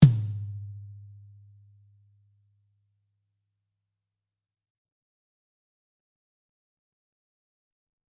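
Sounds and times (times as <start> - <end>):
tom drum from a live drum kit: 0.0 - 0.7.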